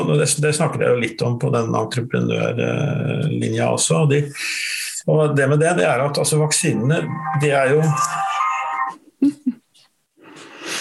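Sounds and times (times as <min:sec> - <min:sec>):
speech: 0:00.1 - 0:08.3
mobile phone ringtone: 0:07.0 - 0:08.9.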